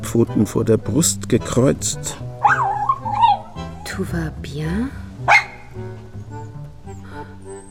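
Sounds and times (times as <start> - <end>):
quiet steady tonal background: 0.0 - 7.7
speech: 0.1 - 2.2, 4.0 - 5.0
small light brown dog barking: 2.4 - 3.6, 5.3 - 5.8.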